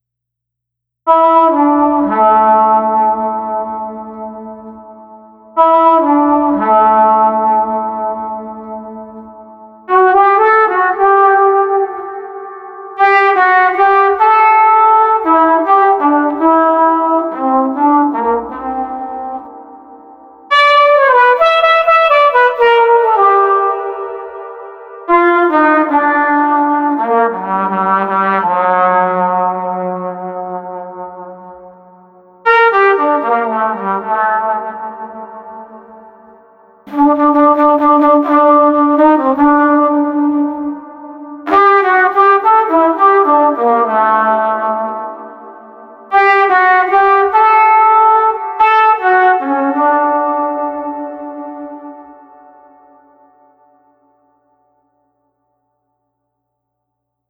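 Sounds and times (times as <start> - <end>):
melancholy street flugelhorn melody: 1.1 - 54.3.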